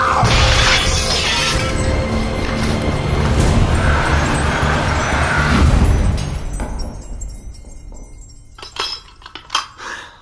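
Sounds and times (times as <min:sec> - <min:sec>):
ground door mirror shattering: 0:00.2 - 0:03.0
glass shards falling and settling: 0:00.3 - 0:09.8.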